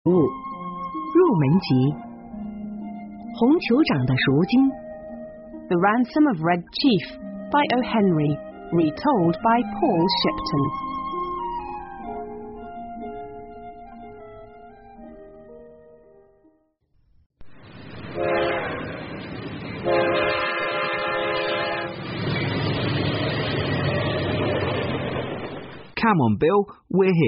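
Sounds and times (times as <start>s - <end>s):
speech: 1.3s - 2.1s, 3.4s - 4.8s, 5.7s - 11.0s, 26.1s - 27.2s
train roaring past: 17.5s - 26.0s
train horn blasts: 18.0s - 19.2s, 19.8s - 22.0s
soft horn-like tone: 18.2s - 19.0s, 19.8s - 22.0s.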